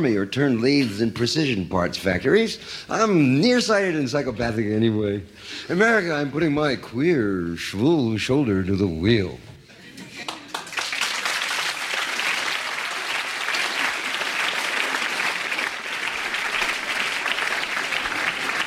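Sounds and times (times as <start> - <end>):
speech: 0.0 - 9.5
audience applause: 10.2 - 18.6.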